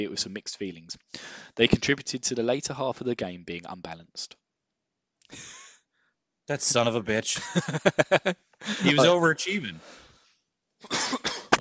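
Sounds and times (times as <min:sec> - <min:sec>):
speech: 0:00.0 - 0:04.4, 0:05.3 - 0:05.6, 0:06.5 - 0:10.0, 0:10.8 - 0:11.3
laughter: 0:07.2 - 0:09.7
person coughing: 0:08.7 - 0:09.1, 0:10.8 - 0:11.5.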